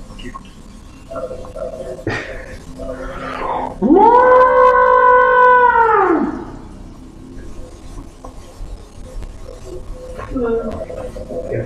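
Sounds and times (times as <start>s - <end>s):
monster call in the forest: 1.7s - 6.6s.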